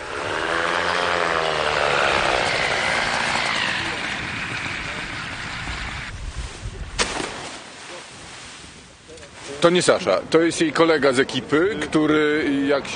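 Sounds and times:
motorized hang glider microlight trike engine droning as it flies in to land: 0.0 - 6.2
speech: 9.6 - 12.9.

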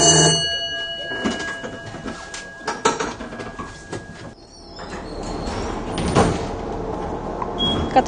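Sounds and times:
tram warning bell ringing: 0.0 - 4.4
tram clunks: 1.1 - 8.0
tram sliding door rumbling: 4.4 - 8.0.

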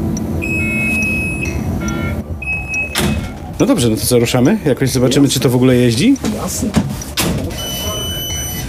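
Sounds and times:
bus reversing sensor high-pitched electronic tone: 0.0 - 3.0, 7.5 - 8.6
bus electronic warning tone beeping for open driver's cab door: 0.0 - 8.6
low bus engine rumble: 0.0 - 8.6
bus cabin noise: 0.5 - 8.6
speech: 3.6 - 7.1.

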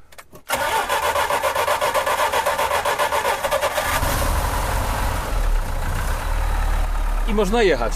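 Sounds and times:
cold Żuk engine cranking and starting: 0.5 - 7.9
cold Żuk engine idling roughly with a deep low rumble: 3.8 - 7.9
speech: 7.4 - 7.9.

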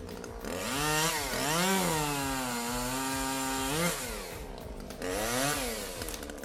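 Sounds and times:
chainsaw revving while cutting down a tree: 0.0 - 6.4.

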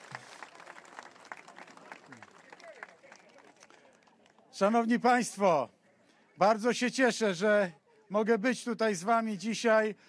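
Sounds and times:
audience applause at a campaign event in Łowicz Poland: 0.0 - 4.4
speech: 4.6 - 5.8, 6.4 - 10.0.

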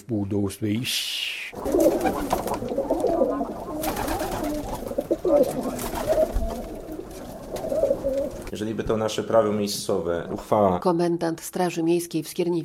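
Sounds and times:
speech: 0.0 - 2.7, 8.5 - 12.6
pigeons cooing around a dovecote: 1.5 - 8.5
birds chirping: 1.5 - 8.6
faint outdoor rustle: 1.6 - 8.6.

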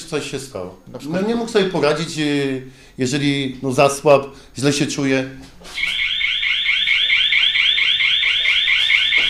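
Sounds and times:
speech: 0.1 - 6.0
alarm ringing with high-pitched electronic pulses: 5.8 - 9.2.

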